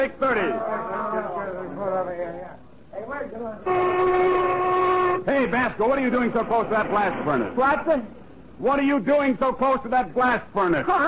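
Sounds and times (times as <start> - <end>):
indistinct voices talking: 0.0 - 11.0
low hum: 0.0 - 11.0
speech: 0.0 - 11.0
factory lunch whistle blowing a sustained blast: 3.6 - 5.3.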